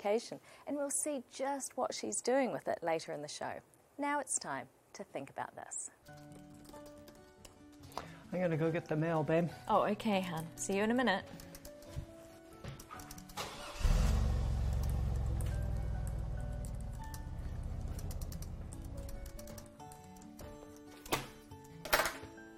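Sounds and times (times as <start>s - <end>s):
speech: 0.0s - 6.9s, 8.0s - 11.5s
car engine starting and rumbling: 13.4s - 18.7s.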